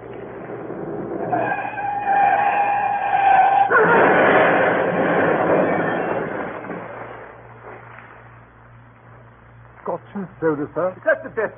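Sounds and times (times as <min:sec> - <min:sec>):
tire squeal of a large green Daimler: 0:01.2 - 0:06.8
large green Daimler skidding off the road through a hedge: 0:01.2 - 0:07.3
speech: 0:10.4 - 0:11.5.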